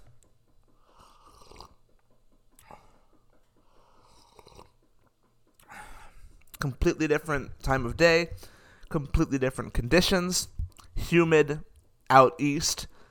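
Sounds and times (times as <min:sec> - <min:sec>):
slurping sips of coffee: 0:01.0 - 0:01.8, 0:03.9 - 0:04.8
speech: 0:06.6 - 0:12.9.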